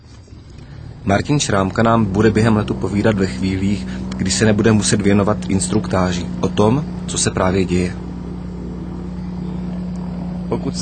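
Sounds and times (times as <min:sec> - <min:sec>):
left engine of an aircraft starting up: 0:00.0 - 0:10.8
speech: 0:01.0 - 0:08.1, 0:10.5 - 0:10.8.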